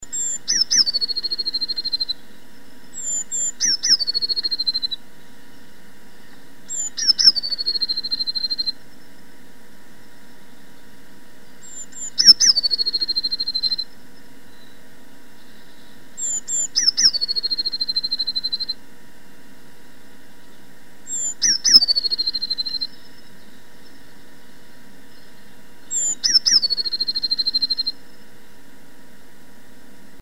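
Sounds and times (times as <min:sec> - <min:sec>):
blue tit: 0:00.0 - 0:09.4, 0:10.0 - 0:19.0, 0:20.2 - 0:28.4
birds: 0:00.0 - 0:30.2.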